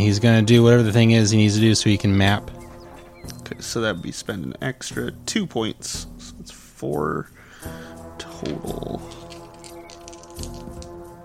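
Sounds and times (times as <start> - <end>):
speech: 0.0 - 2.6, 3.2 - 7.8, 8.4 - 9.2
dice rolled across a surface in a tabletop role-playing game: 8.4 - 11.0.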